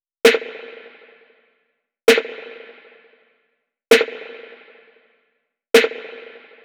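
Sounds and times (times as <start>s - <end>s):
snare drum loop: 0.3s - 1.0s, 2.1s - 2.8s, 3.9s - 4.8s, 5.8s - 6.6s.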